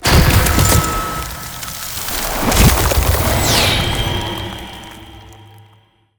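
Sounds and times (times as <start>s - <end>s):
ice spell teleportation effect: 0.0s - 5.8s.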